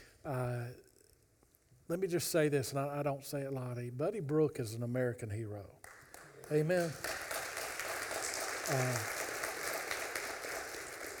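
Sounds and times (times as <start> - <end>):
speech: 0.2 - 0.9, 1.9 - 7.2, 8.7 - 9.2
audience applause for a veteran: 6.1 - 11.1.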